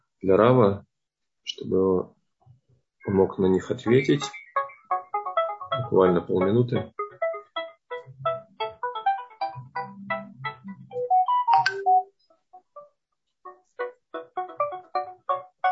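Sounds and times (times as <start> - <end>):
speech: 0.2 - 2.2, 3.0 - 4.4, 5.9 - 7.0
phone ringtone for an incoming call: 3.9 - 12.1.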